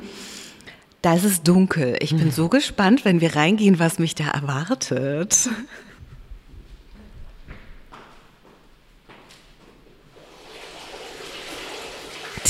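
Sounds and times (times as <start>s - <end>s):
speech: 1.0s - 5.9s
water splashing from a fountain in a darkened art installation room: 10.2s - 12.4s.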